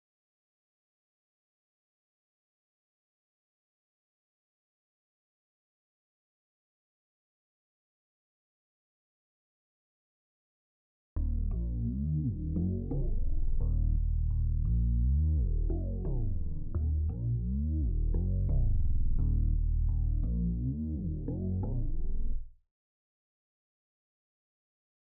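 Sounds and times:
simple 86 BPM D# minor bass melody loop: 11.2 - 22.4.

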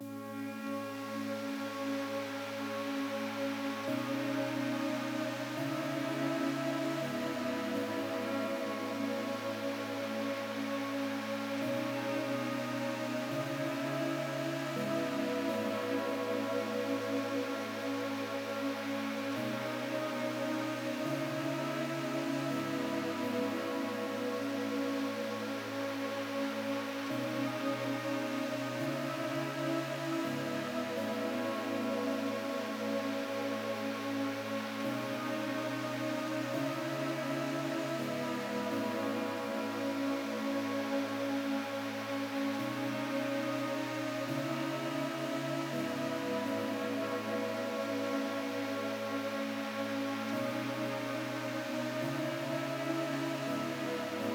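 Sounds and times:
euphoric synth pad in C sharp minor: 0.0 - 54.3.

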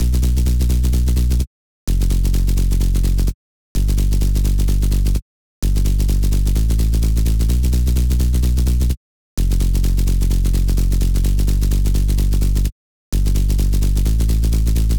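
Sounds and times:
house music sub bass drop loop: 0.0 - 14.9.

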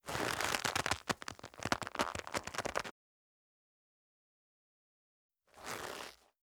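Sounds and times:
leather rope creaking under stress: 0.0 - 2.9, 5.6 - 6.2.

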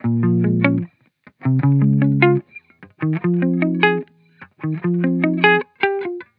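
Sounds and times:
hip hop guitar loop in F minor: 0.0 - 6.3.

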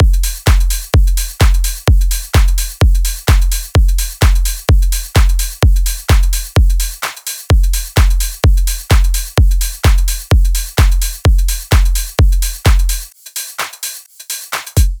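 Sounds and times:
house drum loop: 0.0 - 14.9.

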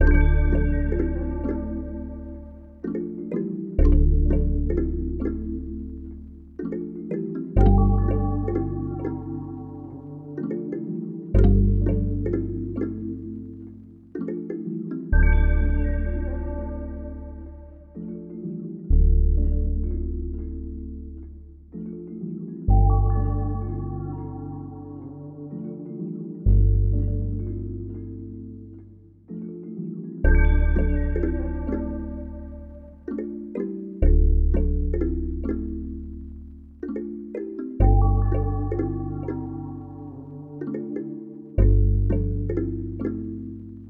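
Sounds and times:
sub bass music loop in D minor: 0.0 - 43.8.

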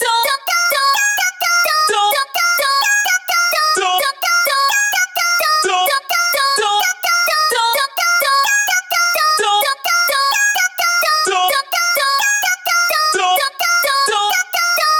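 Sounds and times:
house vocal arpeggio in A sharp minor: 0.0 - 14.9.

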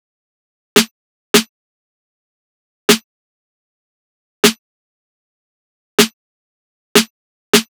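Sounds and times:
snare drum: 0.8 - 1.5, 7.0 - 7.7.

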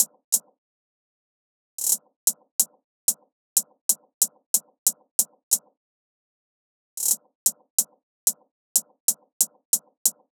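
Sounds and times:
hi-hat loop: 0.0 - 0.5, 1.8 - 5.7, 7.0 - 10.3.

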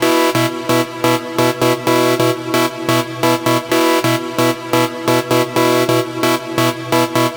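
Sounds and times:
techno synth loop: 0.0 - 7.3.

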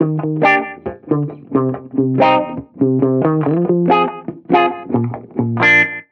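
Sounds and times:
reggae guitar loop in D sharp major: 0.0 - 6.1.

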